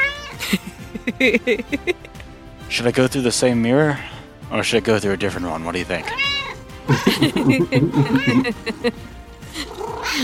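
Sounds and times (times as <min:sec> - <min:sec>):
cat meowing with chattering yowling vocalizations: 0:00.0 - 0:00.4, 0:06.0 - 0:06.7, 0:07.9 - 0:08.5, 0:09.6 - 0:10.2
laughter: 0:00.4 - 0:02.1, 0:06.9 - 0:09.0
speech: 0:00.5 - 0:02.1, 0:02.7 - 0:09.1.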